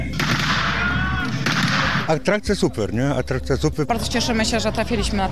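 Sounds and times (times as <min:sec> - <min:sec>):
gunfire at a military battle reenactment at an army museum: 0:00.1 - 0:02.1
speech: 0:02.1 - 0:05.3.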